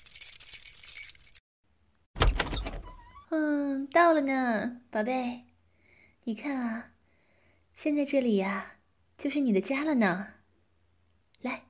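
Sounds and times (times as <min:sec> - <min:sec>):
keys jingling while searching to unlock door: 0:00.0 - 0:01.4
speech: 0:03.3 - 0:05.5, 0:06.3 - 0:06.9, 0:07.8 - 0:10.4, 0:11.4 - 0:11.6.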